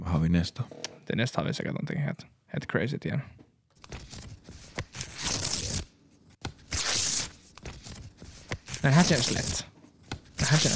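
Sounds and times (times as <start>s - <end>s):
speech: 0.1s - 4.0s, 8.8s - 9.7s, 10.5s - 10.7s
paper tearing: 3.8s - 5.9s, 6.5s - 10.7s.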